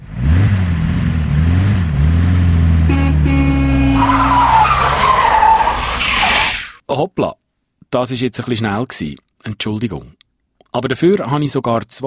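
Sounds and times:
car accelerating hard with a revving engine: 0.0s - 6.8s
skidding tires screeching: 1.3s - 6.8s
car horn blast: 2.8s - 4.5s
speech: 7.1s - 12.0s.

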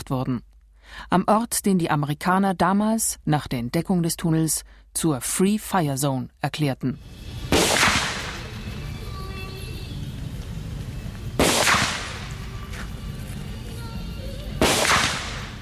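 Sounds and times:
speech: 0.1s - 7.4s
steady outdoor rumble: 7.0s - 15.5s
gunshots from Vietnam War-era weapons at a shooting range: 7.5s - 8.5s, 11.4s - 12.3s, 14.6s - 15.5s.

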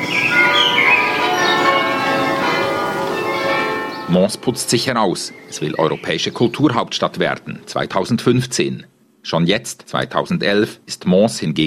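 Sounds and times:
bells pealing from the bell tower at the top of the town of Mons, Belgium: 0.0s - 6.3s
speech: 4.1s - 11.6s.

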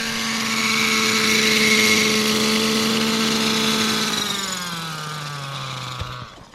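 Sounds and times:
model helicopter engine whining: 0.0s - 6.5s
model helicopter high buzzing rotor noise: 0.0s - 6.5s.

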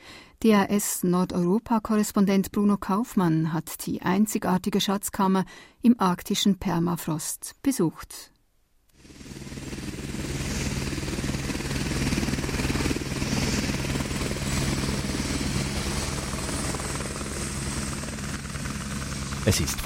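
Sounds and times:
speech: 0.4s - 8.3s, 19.4s - 19.8s
helicopter engine and rotor taking off: 9.0s - 19.8s.

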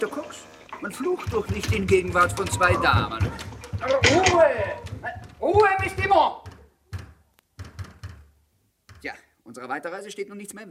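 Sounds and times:
speech: 0.0s - 4.8s, 5.5s - 6.4s, 9.0s - 10.6s
heavy banging on a door: 1.2s - 9.1s.

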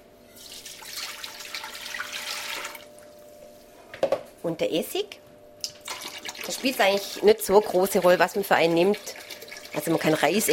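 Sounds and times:
faint hum: 0.0s - 10.5s
water pouring into a cooking pot: 0.4s - 2.9s, 5.8s - 7.2s, 8.5s - 10.5s
speech: 4.4s - 5.3s, 6.5s - 10.5s.

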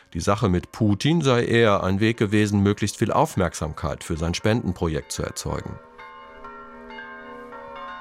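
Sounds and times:
church bells ringing: 0.0s - 7.9s
speech: 0.1s - 5.9s.

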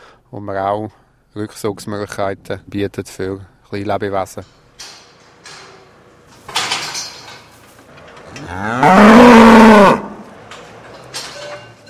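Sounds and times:
speech: 0.3s - 4.6s, 8.5s - 10.1s
mother cow mooing in a barn: 8.4s - 10.3s.

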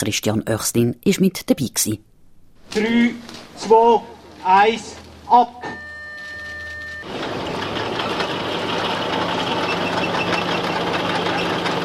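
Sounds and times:
speech: 0.0s - 2.1s, 2.7s - 5.8s
long conveyor belt carrying rubble and debris out of a tunnel: 7.0s - 11.8s
tunnel boring machine cutting a bore into a mountain: 7.0s - 11.8s.

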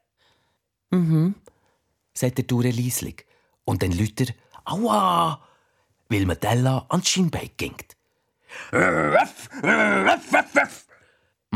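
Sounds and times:
speech: 0.9s - 1.5s, 2.2s - 5.5s, 6.1s - 10.9s
dog barking: 10.0s - 10.9s.

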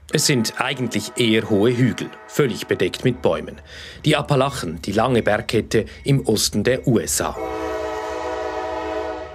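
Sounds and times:
long freight train rumbling: 0.0s - 9.3s
speech: 0.1s - 7.8s
freight train horn blast: 0.3s - 4.1s, 7.4s - 9.3s.

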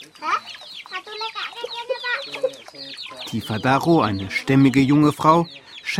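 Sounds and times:
chickens in the sand clucking and squawking: 0.0s - 5.9s
speech: 3.3s - 5.9s.

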